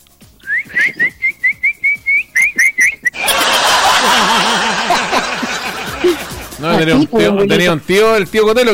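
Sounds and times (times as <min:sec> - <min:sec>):
person whistling to call a dog: 0:00.4 - 0:03.2
laughter: 0:02.9 - 0:07.7
speech: 0:06.8 - 0:08.7.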